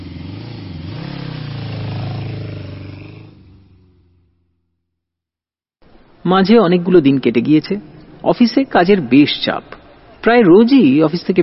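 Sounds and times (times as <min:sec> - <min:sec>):
motorcycle engine pulling out of a parking lot: 0:00.0 - 0:04.8
speech: 0:06.2 - 0:11.4.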